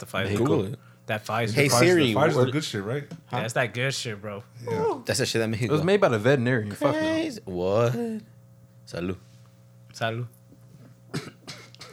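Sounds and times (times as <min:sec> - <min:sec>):
speech: 0:00.0 - 0:08.3, 0:08.9 - 0:09.3, 0:10.0 - 0:10.4
man coughing and choking after swallowing a drink: 0:11.1 - 0:11.9.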